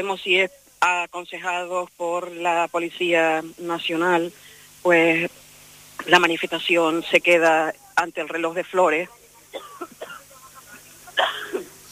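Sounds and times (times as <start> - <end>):
speech: 0.0 - 5.4, 6.0 - 9.7
faint breathy sounds: 4.3 - 4.8
person coughing: 9.6 - 10.2, 11.2 - 11.8.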